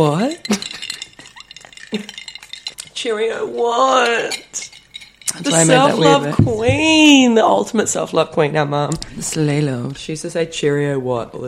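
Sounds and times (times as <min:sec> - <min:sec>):
speech: 0:00.0 - 0:00.6, 0:01.9 - 0:02.2, 0:03.0 - 0:04.6, 0:05.3 - 0:11.4
glasses of lemon spritz clinking in a toast: 0:00.0 - 0:03.0, 0:03.9 - 0:06.4.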